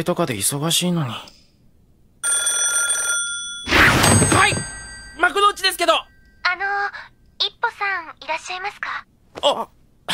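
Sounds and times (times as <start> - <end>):
speech: 0.0 - 1.4, 5.4 - 10.1
telephone ringing with an electronic burst: 2.2 - 6.8.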